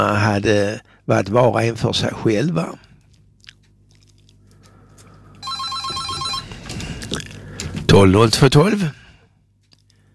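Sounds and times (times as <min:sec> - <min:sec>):
speech: 0:00.0 - 0:02.9, 0:08.0 - 0:09.0
telephone ringing with electronic trill: 0:05.4 - 0:06.8.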